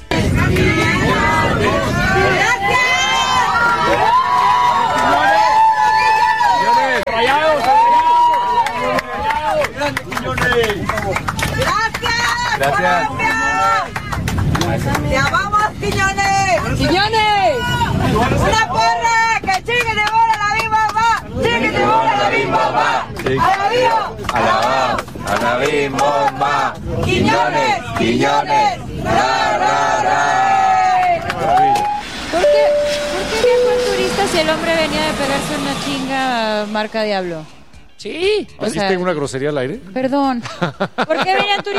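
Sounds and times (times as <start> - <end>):
airplane passengers cheering and whooping: 0.0 - 14.3, 17.4 - 37.0
airplane passengers applauding: 3.2 - 16.7, 30.9 - 32.9
speech: 23.3 - 30.5, 34.3 - 41.7
laughter: 40.4 - 41.7.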